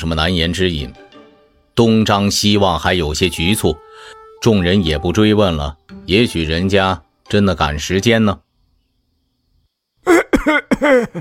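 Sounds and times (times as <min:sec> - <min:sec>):
speech: 0:00.0 - 0:01.0, 0:01.8 - 0:08.4, 0:10.0 - 0:11.2
man coughing as he comes to: 0:10.1 - 0:11.2.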